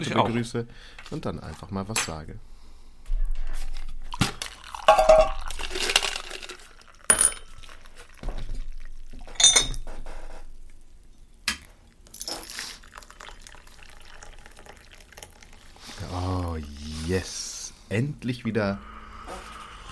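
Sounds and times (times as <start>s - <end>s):
speech: 0.0s - 2.5s, 18.2s - 18.9s
tea pouring into a cup: 4.1s - 9.3s, 12.0s - 17.6s.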